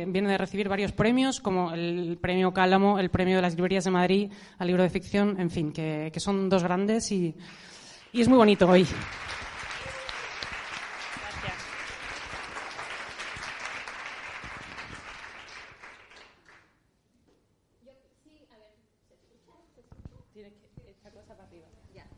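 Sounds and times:
speech: 0.0 - 9.4
audience applauding: 7.9 - 16.7.

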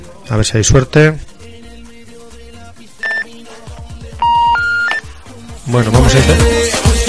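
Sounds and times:
speech: 0.3 - 1.3, 5.7 - 6.9
telephone keypad tones: 4.2 - 5.1.

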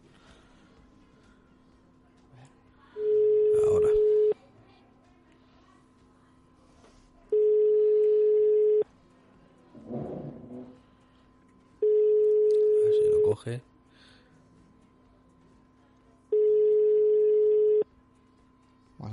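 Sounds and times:
telephone ringback tone of an unanswered outgoing call: 3.0 - 4.4, 7.3 - 8.8, 11.8 - 13.3, 16.3 - 17.8.

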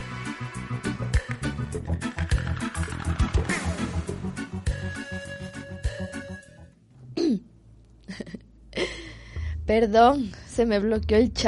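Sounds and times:
dense music: 0.0 - 6.3
speech: 9.7 - 11.4.

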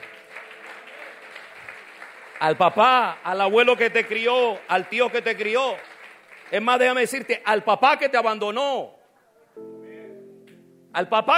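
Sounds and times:
congregation applauding: 0.0 - 7.8
speech: 2.4 - 5.9, 6.5 - 9.0, 9.6 - 9.8, 10.9 - 11.3.

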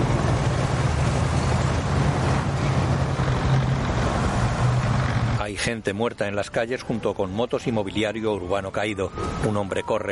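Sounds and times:
convoy of military trucks driving along an avenue: 0.0 - 10.0
speech: 5.6 - 10.0.

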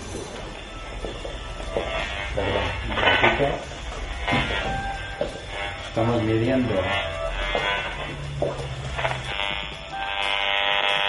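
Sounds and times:
RF meter sonifying a cordless phone's emissions as electronic drone: 0.0 - 11.0
speech: 2.4 - 3.8, 6.0 - 9.1.

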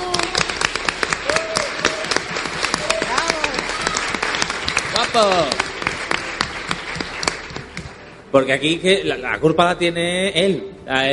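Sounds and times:
crowd applauding: 0.0 - 8.3
speech: 5.2 - 5.6, 8.4 - 11.1.

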